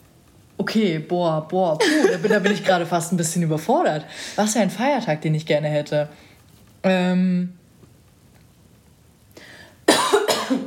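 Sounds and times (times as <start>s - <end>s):
speech: 0.6s - 7.6s
person coughing: 1.8s - 2.7s, 9.9s - 10.6s.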